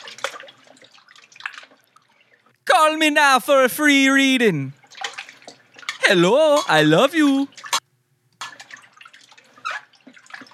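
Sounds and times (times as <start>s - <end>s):
meat being massaged in a bowl of lemon salt water: 0.0s - 2.0s, 4.8s - 6.1s, 8.4s - 10.5s
water splashing in a bowl: 0.0s - 7.8s, 8.4s - 10.5s
speech: 2.8s - 4.8s, 6.1s - 7.5s.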